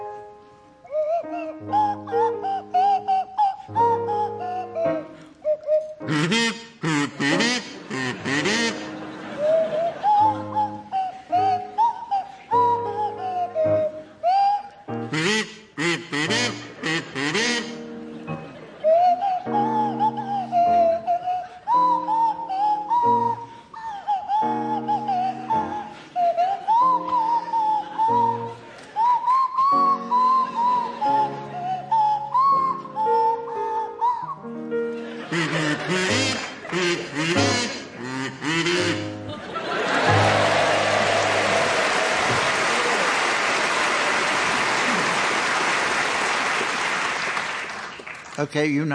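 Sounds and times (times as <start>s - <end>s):
buzzy kazoo playing a slow wavering tune: 0.8s - 39.4s
audience laughter: 6.8s - 12.7s, 16.0s - 21.6s, 24.2s - 29.1s, 34.8s - 46.9s
speech: 48.6s - 48.9s.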